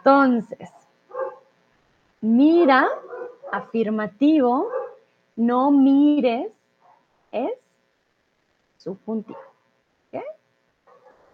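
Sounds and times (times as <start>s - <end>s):
speech: 0.0s - 0.8s, 2.2s - 4.8s, 5.4s - 6.6s, 7.3s - 7.6s, 8.8s - 9.5s, 10.1s - 10.4s
small dog barking next door: 0.6s - 1.5s, 2.6s - 3.8s, 4.6s - 5.1s, 9.3s - 9.6s, 10.9s - 11.3s.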